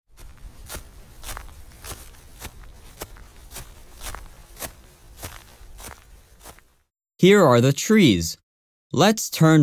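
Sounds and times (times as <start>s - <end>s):
footsteps walking across grass: 0.1s - 6.8s
speech: 7.2s - 9.6s.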